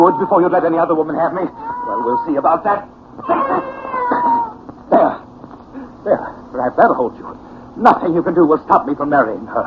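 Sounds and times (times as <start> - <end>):
speech: 0.0 - 3.8, 6.0 - 9.6
cat yowling while attacking: 0.0 - 4.6.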